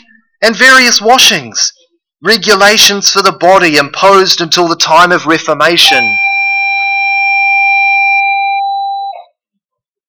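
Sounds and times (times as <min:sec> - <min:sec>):
speech: 0:00.4 - 0:06.3
loud siren in a steady unwavering tone: 0:05.9 - 0:09.3.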